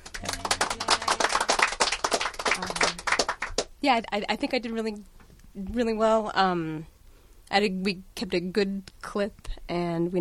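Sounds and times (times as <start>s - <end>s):
applause of many overlapping hand claps: 0.0s - 3.7s
speech: 3.8s - 6.9s, 7.5s - 10.2s.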